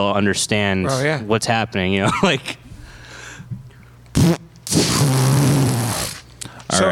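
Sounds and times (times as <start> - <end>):
speech: 0.0 - 2.6
loud raspberry-style fart noise made with the mouth: 4.1 - 6.3.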